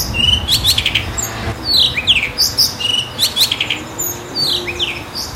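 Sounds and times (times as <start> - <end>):
low rumbling noise: 0.0 - 3.1
Blue rock thrush singing: 0.0 - 5.1.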